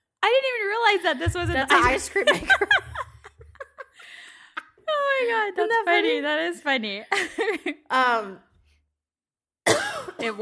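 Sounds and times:
speech: 0.2 - 3.0, 5.1 - 8.5, 10.2 - 10.4
laughter: 1.5 - 4.5
person coughing: 9.7 - 10.4.

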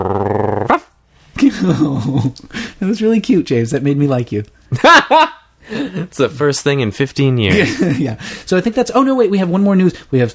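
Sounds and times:
angry dog snarling growl: 0.0 - 0.8
laughter: 1.4 - 2.5, 4.7 - 6.1, 7.5 - 8.2
speech: 1.6 - 10.3.

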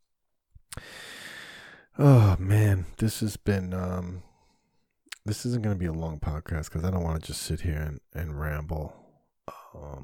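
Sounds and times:
person yawning: 2.0 - 2.5
speech: 2.0 - 4.3, 5.2 - 10.0.

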